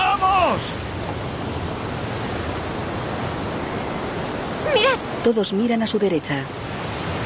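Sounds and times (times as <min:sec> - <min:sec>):
large sea waves crashing on a beach shore: 0:00.0 - 0:07.2
speech: 0:05.2 - 0:06.7.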